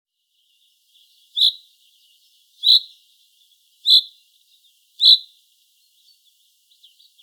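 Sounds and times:
Common chaffinch Fringilla coelebs sharp high-pitched call: 1.3 - 1.7, 2.6 - 3.0, 3.8 - 4.2, 5.0 - 5.4.

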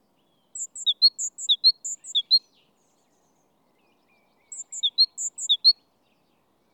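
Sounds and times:
Great tit Parus major calling: 0.6 - 2.4, 4.5 - 5.7.

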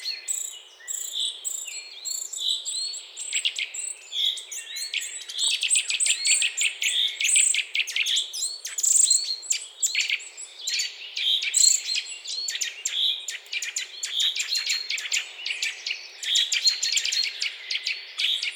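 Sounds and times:
Eurasian nuthatch Sitta europaea calling with clear whistled notes: 0.0 - 18.5.

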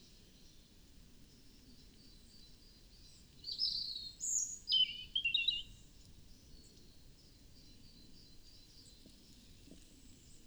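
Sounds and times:
European robin Erithacus rubecula song of thin high whistles and warbled notes: 3.4 - 5.7.

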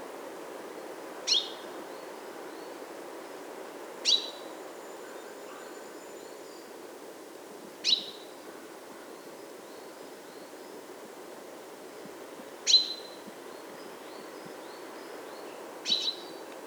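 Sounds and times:
low hiss: 0.0 - 16.6
common chaffinch Fringilla coelebs calls: 15.8 - 16.4.

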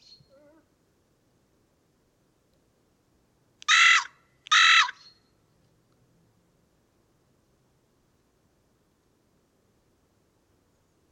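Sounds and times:
carrion crow Corvus corone giving raspy caws: 3.7 - 5.0.

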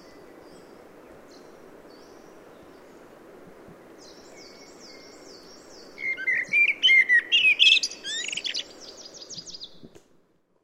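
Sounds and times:
Common blackbird singing, Turdus merula: 4.4 - 9.7.

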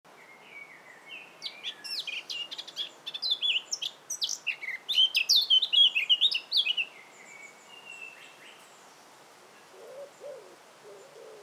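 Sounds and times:
Eurasian blackcap song: 0.2 - 9.1.

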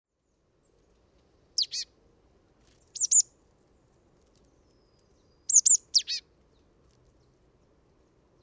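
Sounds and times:
marsh tit Poecile palustris calls: 1.6 - 1.9, 3.0 - 3.3, 5.4 - 6.2.

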